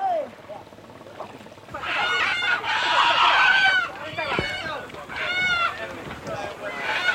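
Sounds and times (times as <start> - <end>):
chickens squawking and shrieking as a Komodo dragon attacks: 1.8 - 5.8, 6.6 - 7.1.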